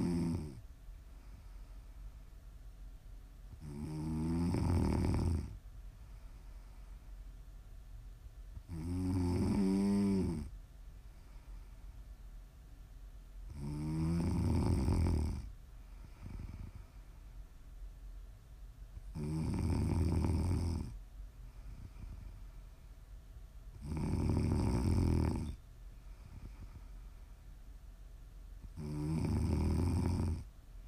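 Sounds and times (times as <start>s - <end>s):
person snoring with loud rasping rattling snores: 0.0s - 0.6s, 3.6s - 5.6s, 8.7s - 10.5s, 13.5s - 15.5s, 19.1s - 21.0s, 23.8s - 25.6s, 28.7s - 30.5s
faint low hum: 0.0s - 30.8s.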